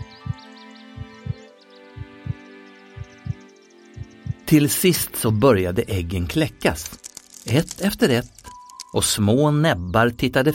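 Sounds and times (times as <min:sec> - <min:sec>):
heartbeat thumping in lub-dub beats: 0:00.0 - 0:00.4, 0:01.0 - 0:01.4, 0:02.0 - 0:02.4, 0:03.0 - 0:03.4, 0:04.0 - 0:04.4
soft sustained musical drone with faint twinkling tones: 0:00.0 - 0:06.0
speech: 0:04.5 - 0:10.5.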